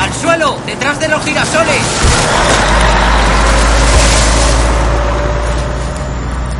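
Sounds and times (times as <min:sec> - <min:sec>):
speech: 0:00.4 - 0:02.8
garbage truck driving past: 0:01.7 - 0:06.5.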